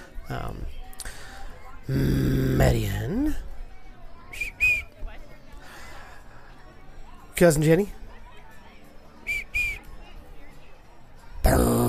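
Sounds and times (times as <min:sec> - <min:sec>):
quiet murmuring background: 0:00.0 - 0:11.8
speech: 0:00.3 - 0:00.8, 0:01.9 - 0:03.5, 0:07.4 - 0:08.0
short high whistles: 0:04.3 - 0:05.0, 0:09.2 - 0:10.0.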